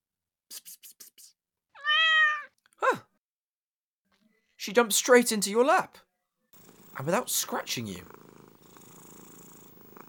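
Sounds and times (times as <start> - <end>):
cat meowing: 1.8 - 2.6
speech: 4.7 - 6.0, 7.0 - 8.3.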